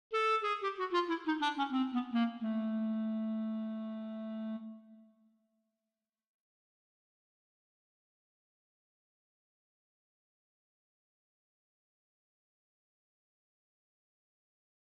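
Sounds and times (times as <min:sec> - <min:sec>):
clarinet trill: 0:00.1 - 0:05.1.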